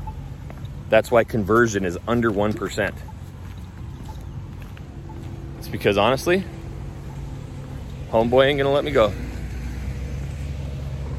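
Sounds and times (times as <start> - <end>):
speech: 0.9 - 3.1, 5.7 - 6.6, 8.1 - 9.2
car driving by on road with engine and tire noise: 3.8 - 11.1.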